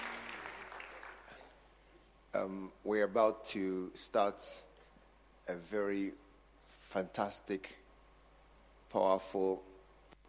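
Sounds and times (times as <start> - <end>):
audience at a church service clapping: 0.0 - 1.8
faint low hum: 0.0 - 10.2
speech: 2.3 - 4.7, 5.5 - 6.2, 6.9 - 7.8, 8.9 - 9.7.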